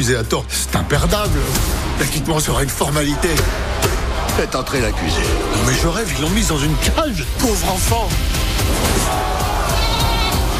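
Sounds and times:
speech: 0.0s - 9.4s
goat bleating loudly: 9.6s - 10.4s.

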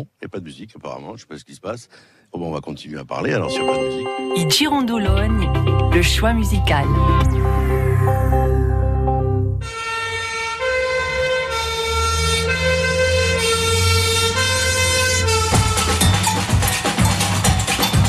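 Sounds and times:
speech: 0.0s - 8.8s
loud fire engine siren: 7.1s - 18.0s.

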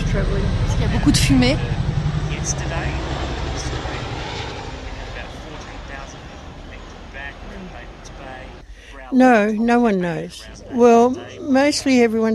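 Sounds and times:
helicopter flying over the city: 0.0s - 12.3s
speech: 0.2s - 1.8s, 2.4s - 3.2s, 9.1s - 12.3s.

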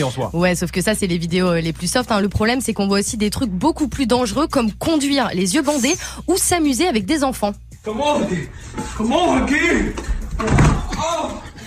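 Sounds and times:
speech: 0.0s - 11.4s
excited voices talking and reacting: 0.0s - 11.6s
child's head hitting a wall: 10.0s - 11.2s.

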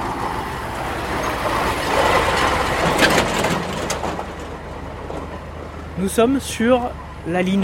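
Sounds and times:
heavy truck crossing a bridge: 0.0s - 7.6s
clanking of rattling truck body: 2.1s - 5.4s
speech: 6.0s - 7.6s.

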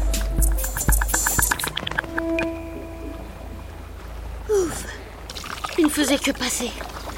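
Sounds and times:
rapid clicking bursts underwater: 0.2s - 2.1s
tourist boat engine droning underwater: 1.0s - 5.7s
speech: 5.9s - 7.0s.

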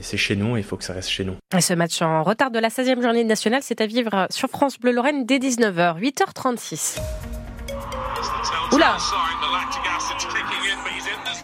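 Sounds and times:
speech: 0.0s - 7.3s, 8.5s - 11.4s
smartphone voice assistant electronic sweeping chime: 7.6s - 10.6s
people talking and exclaiming: 7.8s - 11.4s.

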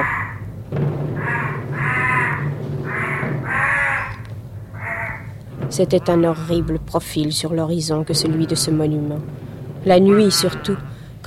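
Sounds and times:
crows cawing: 0.0s - 6.7s, 8.2s - 9.0s, 9.9s - 11.2s
low rumble: 0.4s - 11.2s
speech: 5.8s - 11.2s.

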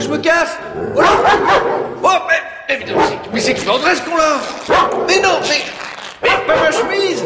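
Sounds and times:
speech: 0.1s - 7.2s
dog in a cellar barking and yipping: 1.0s - 1.9s, 4.6s - 5.4s, 6.2s - 7.2s.

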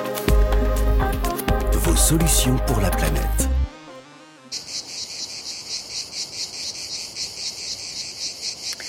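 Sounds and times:
dense chorus of cicadas buzzing and chirping: 0.2s - 8.8s
speech: 2.0s - 3.5s.

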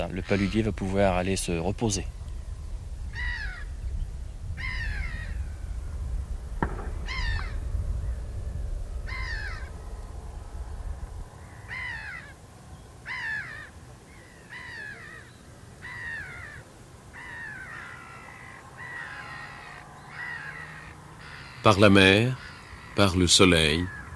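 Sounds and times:
speech: 0.0s - 2.2s, 21.7s - 24.0s
low wind rumble: 0.0s - 24.1s
crows cawing overhead outdoors: 0.2s - 0.7s, 3.1s - 3.8s, 4.6s - 5.5s, 6.6s - 7.7s, 9.0s - 10.0s, 11.3s - 24.1s.

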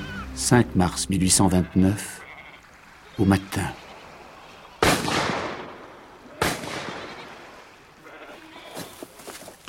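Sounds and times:
speech: 0.4s - 2.2s, 3.2s - 3.8s
gunshots from a man shooting wild goats: 4.8s - 7.5s
scattered rustling: 8.0s - 9.6s.

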